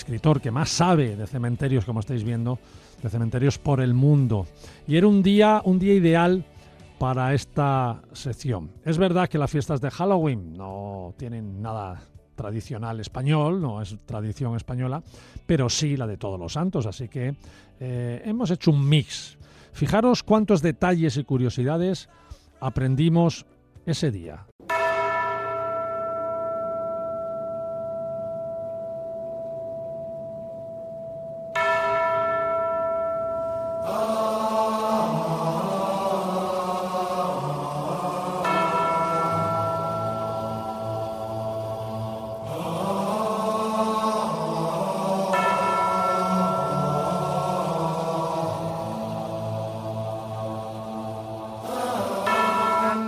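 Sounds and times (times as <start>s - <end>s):
speech: 0.0s - 24.5s
church bells ringing in a long peal: 24.6s - 53.0s.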